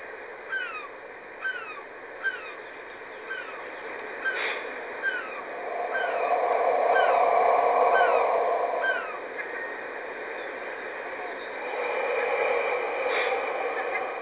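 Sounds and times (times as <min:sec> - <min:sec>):
coastal birds calling: 0:00.5 - 0:14.2
soft rushing background: 0:03.6 - 0:14.2.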